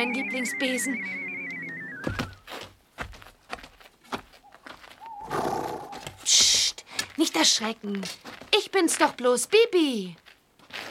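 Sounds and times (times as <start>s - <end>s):
speech: 0.0s - 1.3s, 2.0s - 2.3s, 7.4s - 10.2s
dull thumps: 2.0s - 2.7s
horse whinnying: 5.0s - 6.2s.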